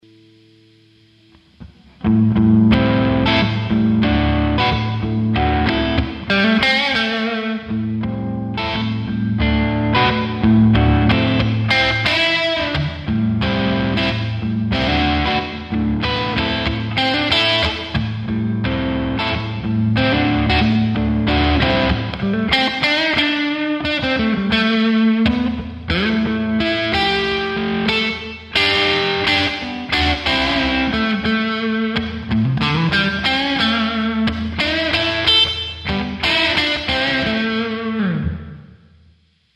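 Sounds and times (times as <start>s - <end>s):
overdriven blues electric guitar with humbucker pickup: 0.0s - 39.5s.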